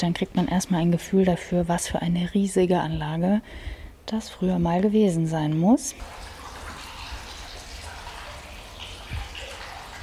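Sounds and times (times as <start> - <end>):
speech: 0.0 - 6.3
outdoor ambience: 0.0 - 10.0
garden fountain water splashing and bubbling: 6.0 - 10.0.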